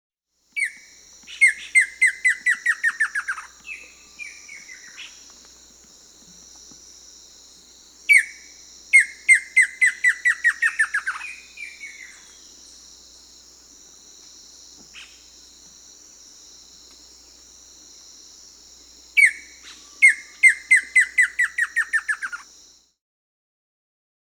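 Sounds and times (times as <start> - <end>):
White-lined Antbird Percnostola lophotes singing in Bolivia: 0.6 - 13.1, 19.1 - 22.5.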